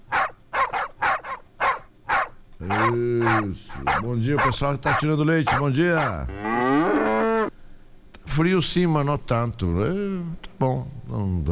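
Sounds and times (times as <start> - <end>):
dogs barking: 0.0 - 6.3
speech: 2.6 - 6.5, 8.4 - 11.4.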